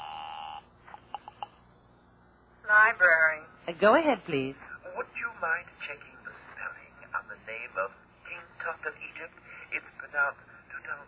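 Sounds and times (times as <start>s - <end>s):
telephone ringing tone while placing a call to a library: 0.0s - 1.5s
speech: 2.9s - 4.6s, 5.4s - 6.2s, 7.5s - 8.0s, 8.6s - 11.0s.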